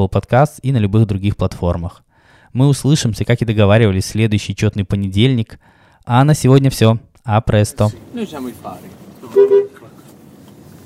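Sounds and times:
speech: 0.0 - 9.6
single short car horn toot: 9.2 - 9.9.

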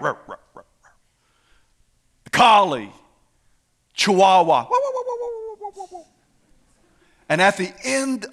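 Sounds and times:
human voice imitating a Great Dane's deep barking: 0.0 - 0.8, 4.7 - 6.1
speech: 2.5 - 3.0, 4.0 - 4.9, 7.3 - 8.3.

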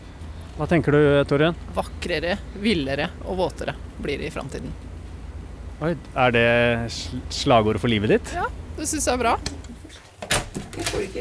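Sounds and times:
faint noise: 0.0 - 11.1
speech: 0.6 - 4.9, 5.8 - 9.7, 10.8 - 11.1
metallic clunk of a door being locked: 10.2 - 11.1.

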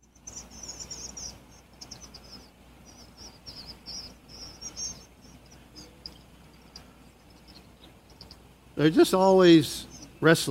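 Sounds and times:
low steady rumble: 0.0 - 10.4
swallows chirping: 0.0 - 10.4
speech: 8.8 - 10.4.

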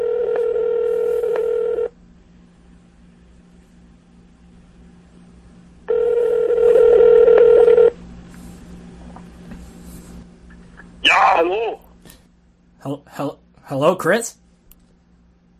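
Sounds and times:
phone call ringing over a speakerphone: 0.0 - 1.9, 5.9 - 8.0
speech: 13.2 - 14.4.

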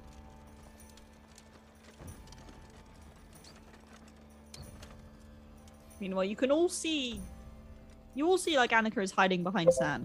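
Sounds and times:
horse hooves clip-clopping on a hard surface: 0.0 - 5.8
speech: 6.0 - 7.3, 8.2 - 10.0.

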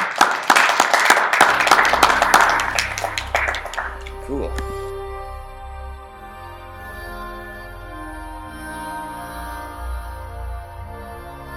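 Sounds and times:
small audience clapping after a gallery talk in an art gallery: 0.0 - 4.8
speech: 4.3 - 4.8.

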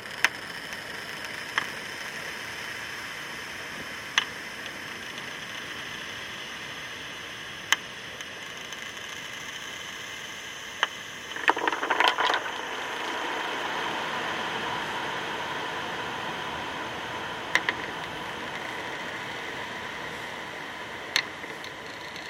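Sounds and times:
hissing drone: 0.2 - 22.2
stones and pebbles clicking on the shore: 11.3 - 12.6.

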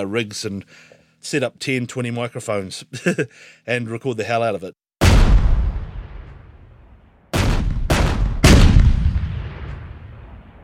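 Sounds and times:
speech: 0.0 - 4.8
gunfire recorded during a weapons recording session: 5.0 - 10.6.

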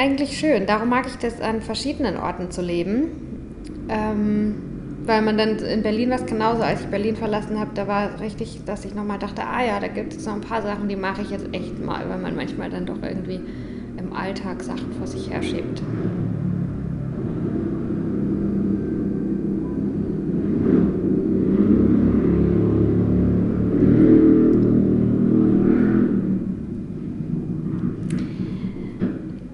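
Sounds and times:
speech: 0.0 - 3.3, 3.9 - 16.2
loud motorcycle engine rumbling and revving while driving past: 14.8 - 29.5.

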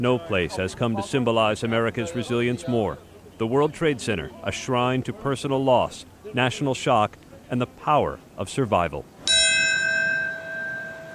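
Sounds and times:
speech: 0.0 - 9.1
deep memorial bell toll: 9.3 - 11.1.

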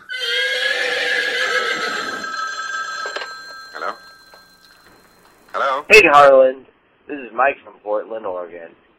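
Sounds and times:
horse whinny: 0.0 - 3.0
speech: 5.9 - 8.8.

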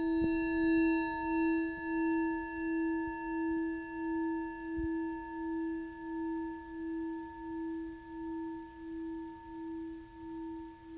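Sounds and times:
bowl struck and ringing: 0.0 - 8.4.

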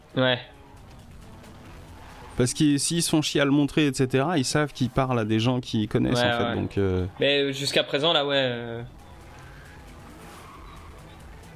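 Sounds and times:
speech: 0.2 - 0.6, 2.4 - 9.0
Japanese car engine running: 0.6 - 2.9, 8.9 - 11.5.

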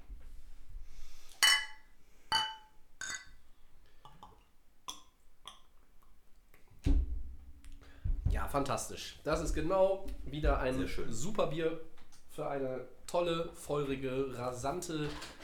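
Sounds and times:
beer glasses clinking together in a toast: 1.4 - 3.4
low thump: 6.8 - 8.7
soft knocks: 6.8 - 11.2
speech: 8.4 - 15.4.

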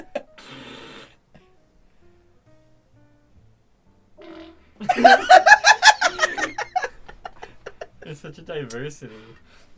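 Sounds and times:
short raspy fart: 0.2 - 1.4, 4.2 - 4.9
woman laughing loudly: 4.8 - 8.0
speech: 4.9 - 5.5, 8.1 - 9.7.

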